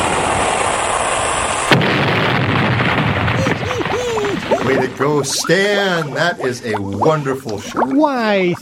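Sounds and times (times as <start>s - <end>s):
explosion from a shot fired at a ship: 0.0s - 5.4s
laughter: 3.4s - 7.7s
speech: 5.0s - 8.6s.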